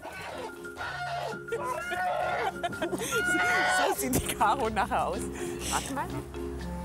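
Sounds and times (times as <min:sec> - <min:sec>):
large fighting-breed rooster clucking and squawking while being caught: 0:00.0 - 0:04.0
speech: 0:00.8 - 0:06.4
laughter: 0:01.0 - 0:06.0.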